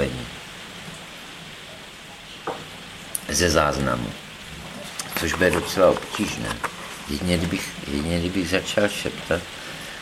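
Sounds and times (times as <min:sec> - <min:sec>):
steady rain falling: 0:00.0 - 0:10.0
water drip or splash: 0:00.8 - 0:06.7
speech: 0:03.3 - 0:04.2, 0:05.2 - 0:09.6.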